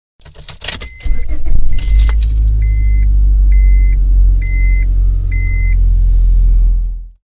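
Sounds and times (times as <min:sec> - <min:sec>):
car starting: 0:00.2 - 0:07.2
car seat belt warning beep: 0:00.7 - 0:05.9.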